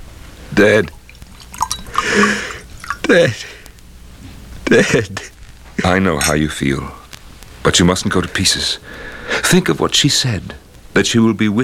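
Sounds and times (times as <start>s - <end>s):
speech: 0.6s - 1.0s, 3.1s - 3.6s, 4.7s - 7.0s, 7.6s - 11.6s
brandy pouring into a glass: 1.0s - 3.0s
breathy vocal sounds: 1.9s - 2.7s.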